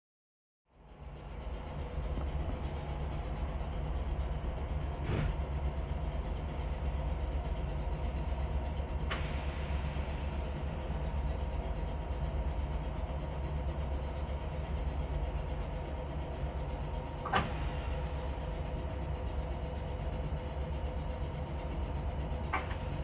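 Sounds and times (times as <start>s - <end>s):
electric train idling, departing and stopping: 0.7s - 23.0s
electric train doors opening and closing: 4.2s - 6.2s, 8.9s - 11.0s, 17.1s - 18.6s, 22.4s - 23.0s.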